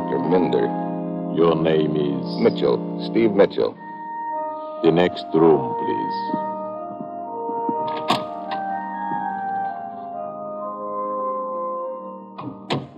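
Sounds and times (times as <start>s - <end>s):
steady droning musical backdrop: 0.0s - 12.9s
speech: 0.3s - 3.8s, 4.8s - 6.5s
door clicking softly shut: 7.6s - 9.8s, 12.4s - 12.9s.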